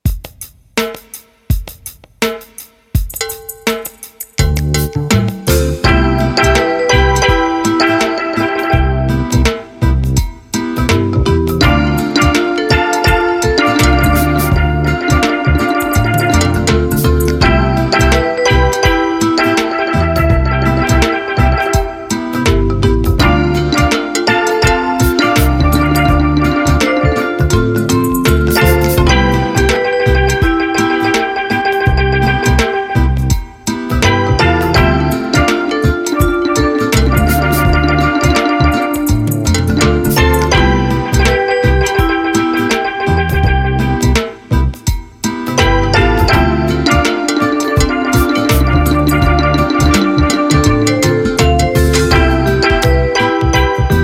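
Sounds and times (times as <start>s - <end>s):
light reggae groove: 0.0s - 54.0s.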